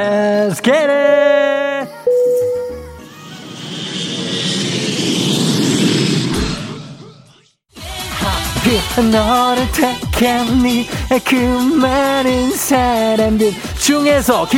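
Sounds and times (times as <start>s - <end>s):
speech: 0.0s - 1.1s, 9.0s - 14.5s
short chime of tones: 2.0s - 3.0s
jet-engine roar of an airplane taking off: 2.7s - 7.4s
music: 7.7s - 14.5s.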